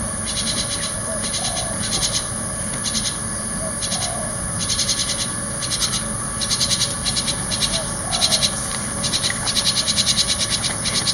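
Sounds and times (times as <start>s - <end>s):
juvenile Javan Myna calls: 0.1s - 11.1s.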